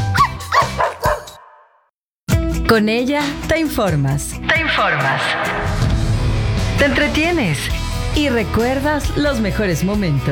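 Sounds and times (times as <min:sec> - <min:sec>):
Basenji dog yodel-like yelps: 0:00.1 - 0:01.7
speech: 0:02.7 - 0:05.9, 0:06.8 - 0:10.3.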